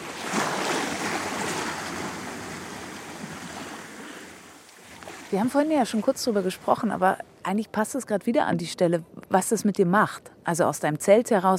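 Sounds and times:
sea waves breaking on the beach: 0.0s - 6.9s
speech: 5.3s - 11.5s.

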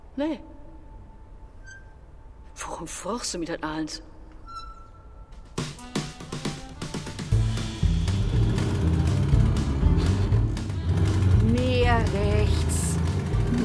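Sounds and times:
speech: 0.2s - 0.6s, 2.7s - 4.1s
car engine sputtering and revving: 7.3s - 13.6s.

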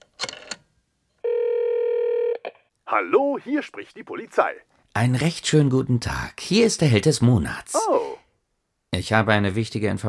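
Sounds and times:
loud steady unbroken telephone tone: 1.2s - 2.4s
speech: 2.9s - 8.2s, 8.9s - 10.0s.

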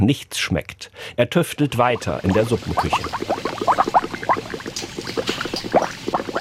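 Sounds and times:
speech: 0.0s - 4.0s
thick seasoning liquid bubbling and gurgling in large kettles: 1.6s - 6.3s.

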